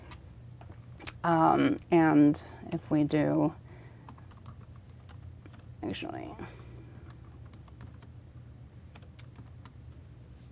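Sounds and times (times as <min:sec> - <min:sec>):
speech: 0:01.2 - 0:03.6, 0:05.8 - 0:06.6
typing on a computer keyboard: 0:04.1 - 0:05.7, 0:06.6 - 0:08.1, 0:08.9 - 0:09.8.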